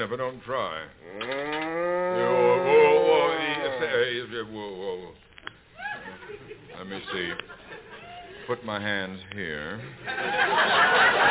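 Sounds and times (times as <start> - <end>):
speech: 0.0 - 1.5, 2.1 - 3.0, 3.8 - 5.3, 6.3 - 7.6, 8.5 - 11.2
cow mooing in a barn before milking: 1.0 - 3.7
laughter: 5.8 - 8.5, 10.0 - 11.2.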